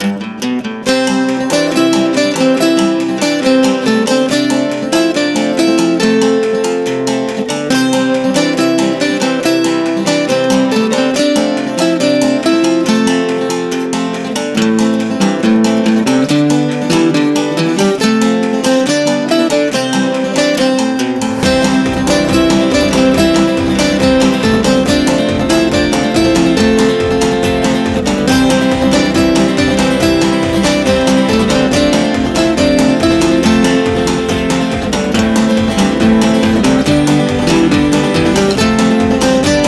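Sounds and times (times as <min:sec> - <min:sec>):
happy acoustic country folk music: 0:00.0 - 0:39.6.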